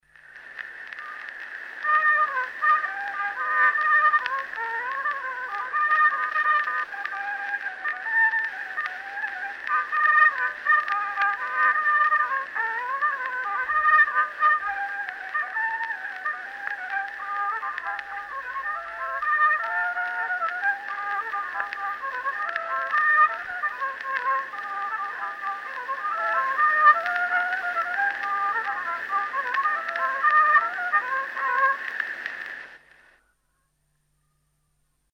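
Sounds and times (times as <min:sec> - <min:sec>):
old folk polka played on violin in Kuusalu: 0:00.9 - 0:32.4.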